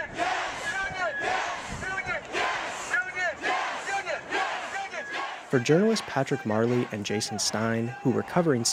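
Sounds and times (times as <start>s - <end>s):
large protest crowd chanting inside the Capitol: 0.0s - 8.7s
speech: 5.5s - 8.7s.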